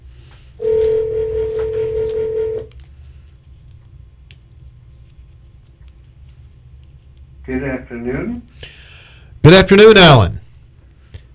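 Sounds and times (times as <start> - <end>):
telephone call electronic ringback tone: 0.6 - 2.7
speech: 7.5 - 8.6, 9.5 - 10.4.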